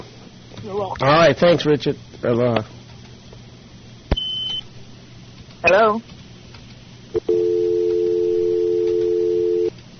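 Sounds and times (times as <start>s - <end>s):
speech: 0.6s - 2.8s, 5.6s - 6.1s
phone line tone after caller disconnected from a call-in line: 7.2s - 9.7s.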